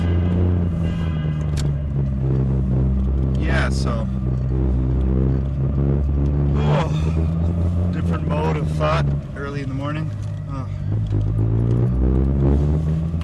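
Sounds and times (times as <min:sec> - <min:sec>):
car engine humming while driving out of underground parking garage: 0:00.0 - 0:13.2
speech: 0:03.7 - 0:04.8.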